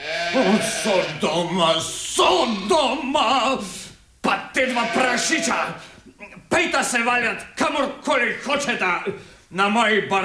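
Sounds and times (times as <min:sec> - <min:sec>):
goat bleating: 0:00.0 - 0:01.5, 0:02.2 - 0:03.1, 0:04.5 - 0:05.8
speech: 0:00.3 - 0:10.2.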